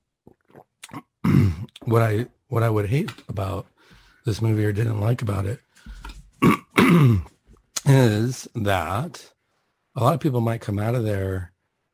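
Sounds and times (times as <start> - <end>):
speech: 1.0 - 9.4, 10.0 - 11.5
person coughing and clearing the throat: 1.2 - 1.7, 6.4 - 7.4.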